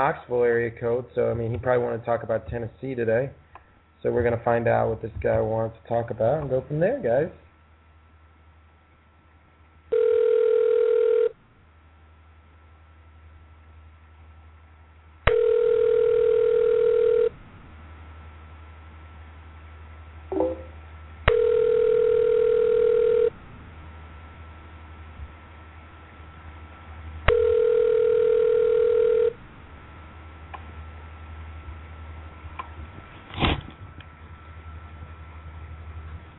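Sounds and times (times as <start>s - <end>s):
speech: 0.0s - 3.4s, 4.0s - 7.4s
low hum and faint line noise: 0.0s - 36.3s
phone line ringback tone while placing a call: 9.9s - 11.4s, 15.3s - 17.3s, 21.3s - 23.4s, 27.3s - 29.4s.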